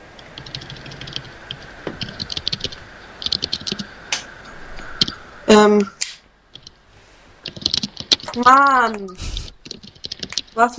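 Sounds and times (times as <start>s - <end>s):
faint steady hiss: 0.0s - 10.7s
typing on a laptop keyboard: 0.2s - 3.9s, 7.4s - 9.0s, 9.6s - 10.7s
speech: 5.6s - 6.0s, 8.4s - 9.3s, 10.6s - 10.7s.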